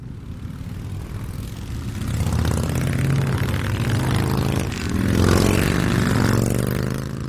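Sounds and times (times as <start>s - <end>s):
Harley-Davidson motorcycle engines roaring: 0.0s - 7.2s.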